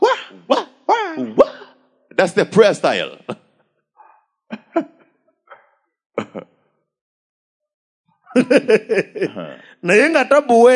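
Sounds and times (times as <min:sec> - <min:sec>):
voice imitating a dog barking with yelps and a howling whine: 0:00.0 - 0:01.7
speech: 0:02.2 - 0:03.3, 0:08.4 - 0:10.7
laughter: 0:06.2 - 0:06.4, 0:08.3 - 0:10.2.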